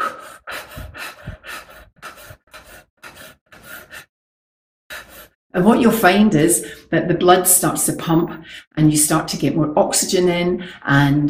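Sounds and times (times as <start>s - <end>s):
rapid breathing during an energizing breathing exercise: 0.0s - 4.1s, 4.9s - 5.4s
speech: 5.5s - 11.2s.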